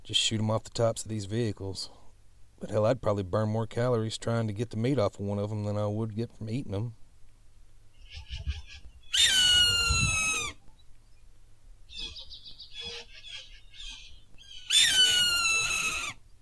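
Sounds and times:
speech: 0.1s - 2.0s, 2.6s - 7.0s
bird chatter: 7.9s - 10.5s, 11.9s - 16.4s
hawk screeching: 8.0s - 10.6s, 11.9s - 16.2s.

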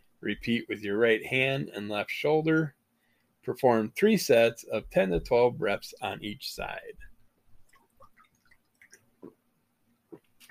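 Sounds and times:
speech: 0.2s - 2.8s, 3.4s - 7.1s
sipping water with wet mouth clicks and slurps: 7.3s - 10.4s
soft gulping swallows: 7.6s - 10.4s.

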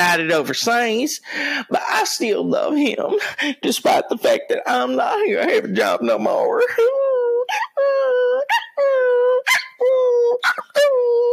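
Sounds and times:
speech: 0.2s - 7.6s
person howling like a dog: 6.8s - 11.3s.

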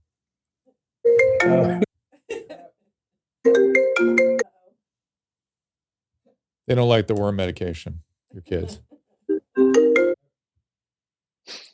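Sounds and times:
speech: 1.4s - 1.9s, 6.7s - 8.9s
melodic incoming-call phone ringtone: 3.5s - 4.4s, 9.3s - 10.2s.

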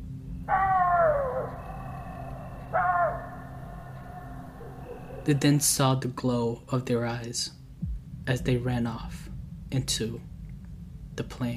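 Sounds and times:
coyotes yapping: 0.4s - 5.7s
low steady rumble: 3.3s - 11.5s
speech: 5.3s - 7.6s, 8.3s - 10.3s, 11.2s - 11.5s.

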